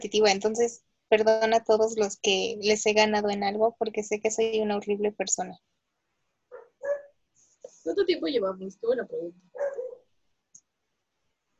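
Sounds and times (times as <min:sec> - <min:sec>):
speech: 0:00.0 - 0:05.7, 0:07.8 - 0:09.6
pet dog barking: 0:06.5 - 0:07.2, 0:09.5 - 0:10.1.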